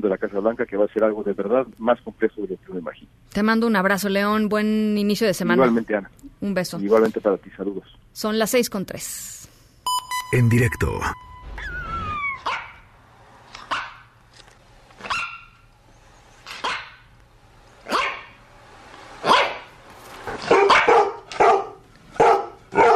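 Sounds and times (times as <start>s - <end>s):
speech: 0.0s - 9.4s, 10.3s - 11.2s
faint steady hum: 0.0s - 20.2s
dog barking: 12.4s - 12.8s, 13.7s - 14.0s, 15.0s - 15.6s, 16.6s - 17.0s, 17.8s - 18.4s, 19.2s - 19.7s, 20.4s - 22.9s.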